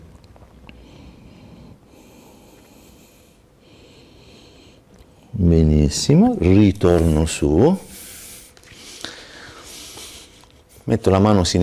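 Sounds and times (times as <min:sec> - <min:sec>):
slow deep breathing during a yoga stretch: 0:00.7 - 0:05.3, 0:07.9 - 0:10.7
speech: 0:05.4 - 0:07.9, 0:10.9 - 0:11.6.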